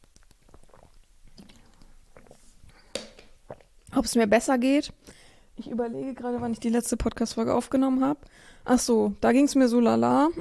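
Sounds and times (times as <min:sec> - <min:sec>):
low hiss: 0:00.0 - 0:09.3
swallowing noises: 0:00.2 - 0:03.8
person sipping a drink: 0:00.2 - 0:03.9
speech: 0:04.0 - 0:10.4.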